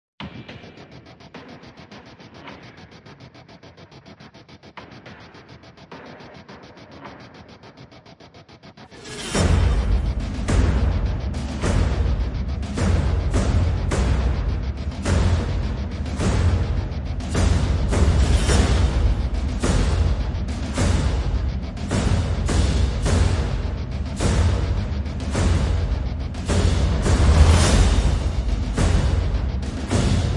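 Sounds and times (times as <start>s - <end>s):
percussion and pulses: 0.2s - 30.3s.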